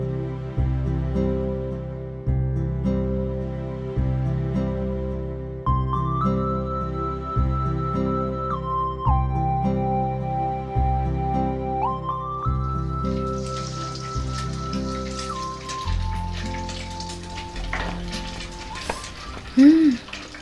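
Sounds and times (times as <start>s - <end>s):
gentle melodic music track: 0.0s - 20.3s
fish sizzling while frying in a pan: 12.7s - 20.3s.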